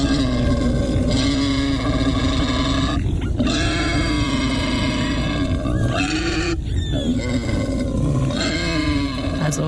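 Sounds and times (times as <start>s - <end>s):
wild boar grunting: 0.0s - 9.6s.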